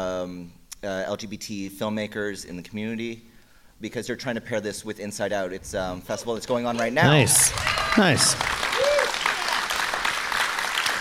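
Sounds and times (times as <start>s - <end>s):
speech: 0.0s - 8.5s
audience applause at a film festival fundraiser screening: 7.0s - 10.9s.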